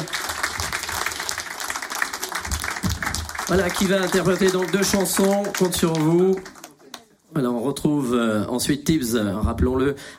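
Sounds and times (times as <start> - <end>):
studio audience applauding for a singer: 0.0 - 7.0
speech: 3.5 - 6.5, 7.3 - 10.1.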